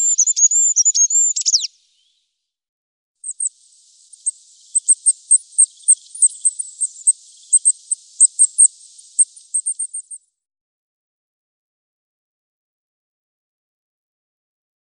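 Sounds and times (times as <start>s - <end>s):
goldcrest singing: 0.0s - 2.2s, 3.2s - 10.3s.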